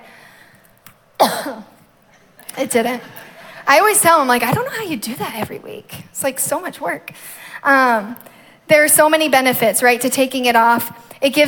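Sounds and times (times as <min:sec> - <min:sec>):
fairly loud cough: 0:01.2 - 0:01.8
speech: 0:02.6 - 0:11.4.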